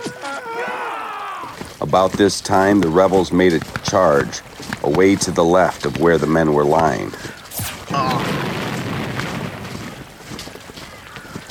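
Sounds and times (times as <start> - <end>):
speech: 1.9 - 8.4
artillery battery cannon firing on an advancing rebel army: 7.5 - 10.0.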